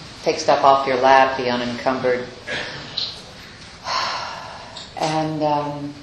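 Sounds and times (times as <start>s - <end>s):
speech: 0.2s - 2.8s, 5.0s - 6.0s
people taking deep breaths together: 2.5s - 4.9s.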